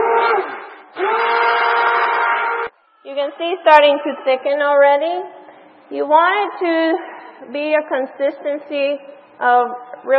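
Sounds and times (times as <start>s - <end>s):
stick blender mixing soap batter: 1.0s - 2.7s
speech: 3.2s - 10.1s.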